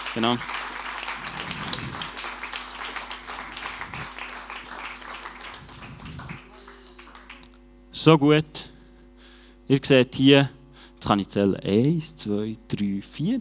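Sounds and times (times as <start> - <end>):
crowd applauding: 0.0 - 7.4
speech: 0.2 - 0.6, 8.0 - 8.7, 9.7 - 13.4.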